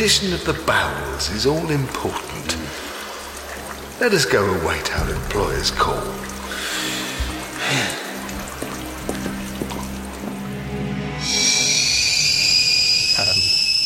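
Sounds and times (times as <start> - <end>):
speech: 0.0 - 2.7, 4.0 - 6.3, 7.7 - 8.0
water for tea bubbling and dripping: 0.0 - 13.4
sharp sustained high-pitched whistle: 11.2 - 13.8.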